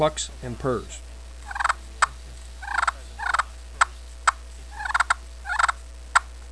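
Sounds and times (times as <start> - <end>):
slate turkey call clucks for turkey hunting: 1.4 - 6.3.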